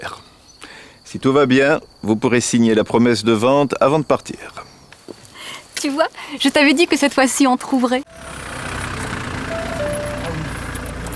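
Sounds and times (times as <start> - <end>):
speech: 1.1 - 4.7, 5.8 - 8.0
car engine rumble as a car pulls in and parks: 8.1 - 11.1.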